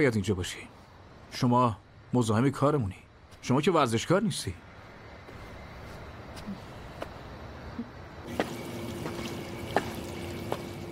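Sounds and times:
speech: 0.0s - 4.7s
water dripping: 8.3s - 10.9s.

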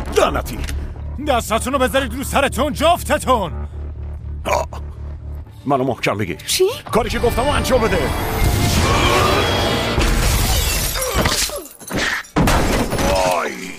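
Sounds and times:
speech: 0.2s - 3.6s, 4.4s - 4.8s, 5.6s - 9.5s
glass window shattering: 10.0s - 13.6s.

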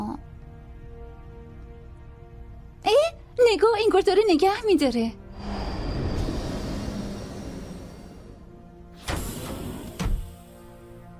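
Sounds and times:
speech: 3.5s - 5.2s
fast train rumbling on rails: 5.4s - 10.4s.

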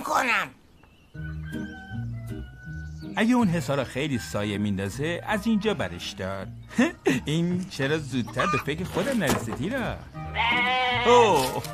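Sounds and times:
speech: 0.2s - 0.6s, 3.2s - 11.7s
young goat bleating: 8.3s - 8.7s, 10.3s - 11.6s.

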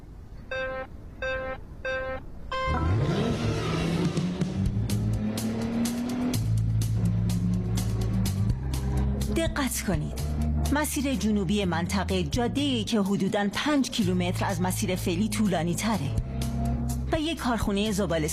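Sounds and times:
car driving along a road: 0.0s - 11.5s, 16.1s - 17.1s
short electronic beeps: 0.5s - 2.9s
car engine revving: 2.6s - 11.4s
speech: 9.4s - 16.2s, 17.2s - 18.3s.

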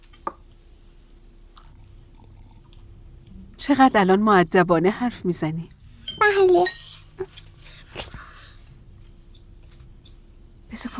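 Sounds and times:
low steady hum: 0.0s - 10.9s
child chewing food: 1.3s - 3.4s, 6.8s - 10.3s
speech: 3.6s - 7.4s, 10.8s - 10.9s.

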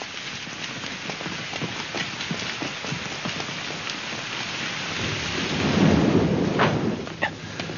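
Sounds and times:
drips and patters: 0.0s - 7.7s
steady rain pouring down: 0.0s - 7.7s
low rumble of thunder: 4.9s - 7.7s.

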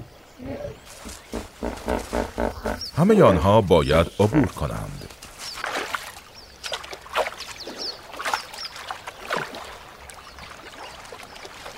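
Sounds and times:
water rushing in a stream: 0.0s - 11.7s
speech: 3.0s - 5.0s.

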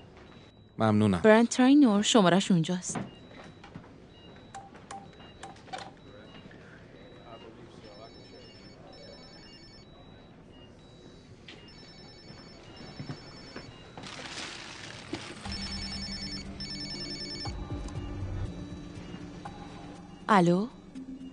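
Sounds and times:
speech: 0.8s - 3.2s, 20.4s - 20.8s
electronic phone keypad beeps: 2.7s - 14.3s, 15.4s - 21.3s
buzzing telephone ring tone through the line: 7.8s - 10.3s, 11.0s - 14.0s, 15.4s - 21.3s.

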